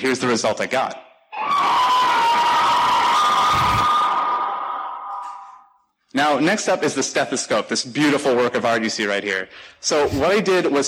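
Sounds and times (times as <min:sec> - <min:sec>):
speech: 0:00.0 - 0:01.7, 0:06.2 - 0:10.8
time-stretched monstrous scream: 0:01.3 - 0:05.5.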